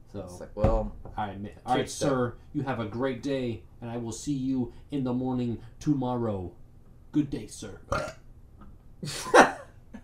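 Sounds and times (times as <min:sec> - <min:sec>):
speech: 0:00.1 - 0:08.2, 0:09.0 - 0:09.6
burp: 0:07.9 - 0:08.3.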